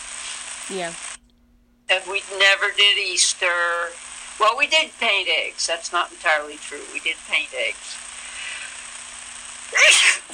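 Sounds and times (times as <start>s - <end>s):
speech: 0.7s - 1.2s, 1.9s - 8.0s, 9.7s - 10.3s
sneeze: 9.7s - 10.3s.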